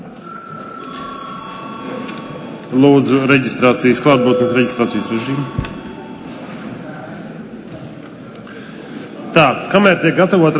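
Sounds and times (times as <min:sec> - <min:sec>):
faint murmur of the room: 0:00.0 - 0:10.5
session bell ringing to signal a break: 0:00.2 - 0:07.6
speech: 0:02.7 - 0:05.7, 0:09.4 - 0:10.5.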